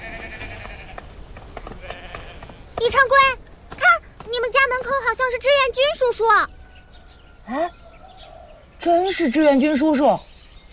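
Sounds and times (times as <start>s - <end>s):
flock of sheep bleating while driven home: 0.0s - 1.1s, 1.8s - 2.7s
speech: 2.9s - 3.4s, 4.7s - 6.6s, 7.5s - 7.8s, 8.8s - 10.3s.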